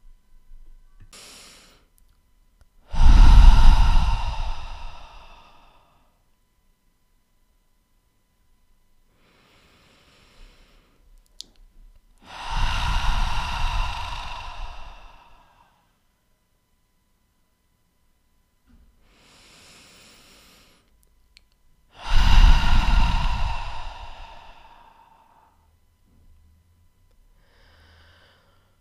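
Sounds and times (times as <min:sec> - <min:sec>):
deep breaths in through the nose and out through the mouth: 0:02.8 - 0:06.2, 0:09.1 - 0:11.1, 0:12.2 - 0:16.0, 0:19.0 - 0:20.9, 0:21.9 - 0:25.7, 0:27.4 - 0:28.7.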